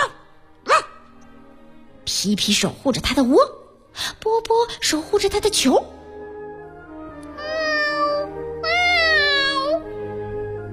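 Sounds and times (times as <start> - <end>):
speech: 2.2 - 6.0
kitten meowing plaintively: 7.3 - 9.9.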